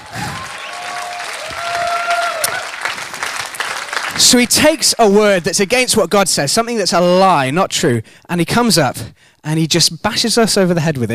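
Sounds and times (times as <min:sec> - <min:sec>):
faint whistles and cheers from crowd: 0:00.0 - 0:03.0
audience applause: 0:00.0 - 0:05.5
speech: 0:04.2 - 0:11.1.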